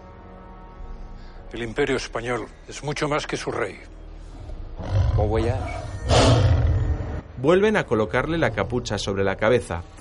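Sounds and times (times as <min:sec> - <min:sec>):
speech: 0:01.5 - 0:04.0, 0:05.2 - 0:06.5, 0:07.4 - 0:10.0
tiger roaring: 0:04.4 - 0:07.2.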